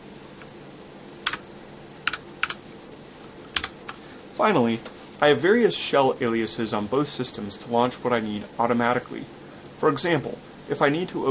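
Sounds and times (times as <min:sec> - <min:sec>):
low steady hiss: 0:00.0 - 0:11.2
keys clattering on a computer keyboard as a search word is typed: 0:03.5 - 0:03.9
speech: 0:04.4 - 0:11.2.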